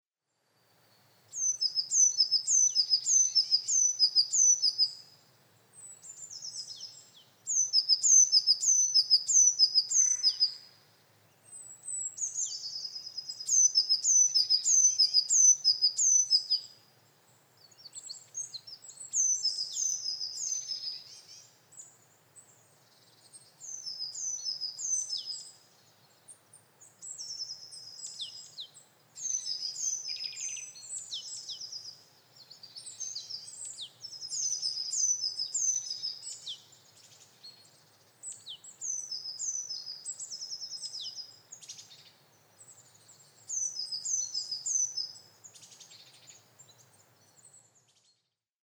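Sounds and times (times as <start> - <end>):
great tit singing: 1.3 - 16.8, 17.5 - 48.4.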